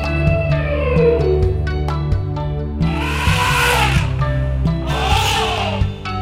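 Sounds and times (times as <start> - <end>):
steady bouncy music backing: 0.0 - 6.2
elephant trumpeting: 2.8 - 6.1.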